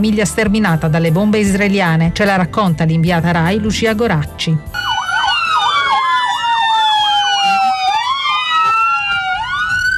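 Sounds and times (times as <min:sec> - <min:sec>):
speech: 0:00.0 - 0:04.9
several ambulance sirens wailing: 0:04.7 - 0:09.9.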